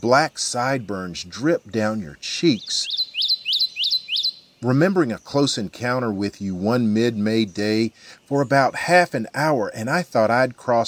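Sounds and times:
speech: 0.0 - 3.0, 4.6 - 10.8
Kentucky Warbler singing ringing two-note phrases: 0.0 - 10.8.

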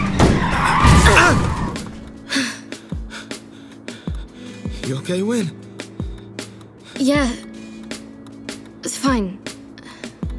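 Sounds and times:
car skidding with tire screech: 0.0 - 2.0
thuds and knocks: 0.0 - 2.1
speech: 4.9 - 5.6, 7.0 - 7.5, 9.0 - 9.5.

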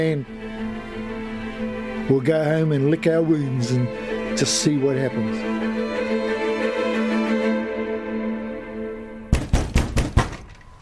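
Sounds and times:
speech: 0.0 - 0.5, 2.1 - 5.8
sustained tonal music bed: 0.0 - 9.4
sharp knocks on a door: 9.3 - 10.4.

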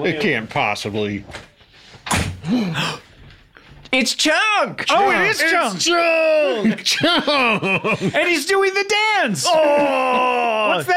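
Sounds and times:
speech: 0.0 - 3.0, 3.9 - 10.9
door banging shut: 2.0 - 2.4
laughter: 6.4 - 8.4.

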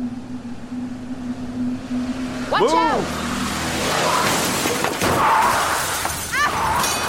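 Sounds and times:
truck engine rumbling: 0.0 - 7.0
truck tires screeching: 0.0 - 7.0
clattering wreckage: 3.8 - 7.0
truck crashing through a front door with shattering glass: 4.2 - 7.0.

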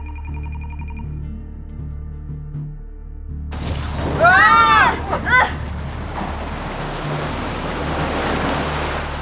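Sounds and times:
water rushing in and flooding a tunnel: 3.6 - 9.2.

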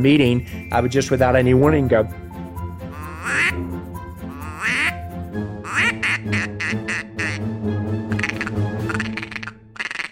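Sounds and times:
speech: 0.0 - 2.2
duck call imitating male and female mallard quacks: 2.9 - 3.6, 4.4 - 5.0, 5.6 - 7.5, 8.1 - 10.1.

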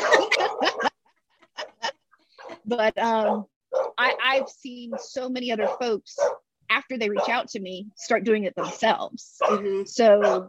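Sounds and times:
dog barking: 0.0 - 1.0, 3.2 - 6.4, 7.1 - 7.4, 8.6 - 8.8, 9.4 - 9.6, 10.2 - 10.4
laughter: 0.0 - 2.9
speech: 2.7 - 10.4.

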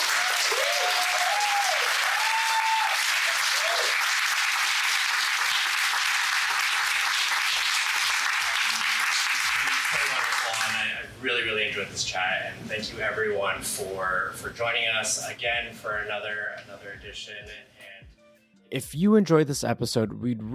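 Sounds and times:
audience members calling out and cheering: 0.0 - 10.8
sustained audience applause: 0.0 - 10.9
speech: 11.8 - 17.8, 18.7 - 20.5.

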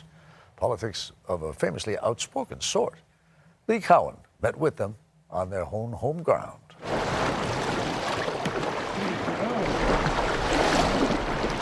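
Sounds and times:
speech: 0.6 - 3.1, 3.7 - 6.6
rushing river water around a small drifting boat: 6.8 - 11.6.

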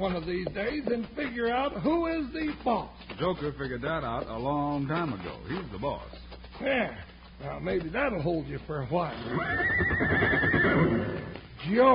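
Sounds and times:
speech: 0.0 - 11.9
horse whinnying: 9.1 - 11.4.

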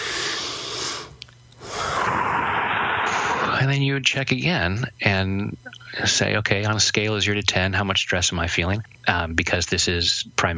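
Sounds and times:
deep breath: 0.0 - 3.6
speech: 3.6 - 10.5.

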